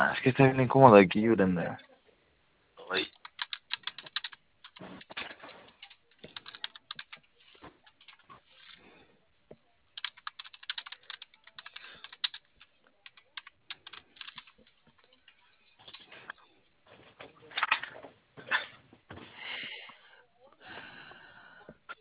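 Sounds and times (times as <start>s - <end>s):
speech: 0.0s - 1.9s, 2.9s - 3.2s
faint sounds: 0.0s - 21.9s
typing on a computer keyboard: 3.1s - 8.2s, 10.0s - 16.1s.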